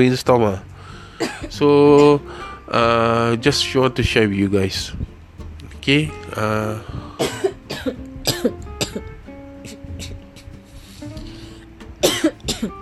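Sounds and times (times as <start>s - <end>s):
speech: 0.0s - 5.1s, 5.8s - 8.6s
faint steady tonal background: 0.0s - 12.8s
person coughing with sharp hacking coughs: 1.2s - 1.5s, 7.2s - 9.0s, 12.0s - 12.7s.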